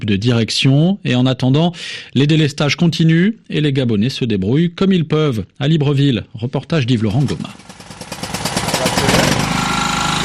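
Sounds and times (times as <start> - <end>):
speech: 0.0 - 7.8
power generator running at a home during a power cut in Libreville, Gabon: 7.0 - 10.2.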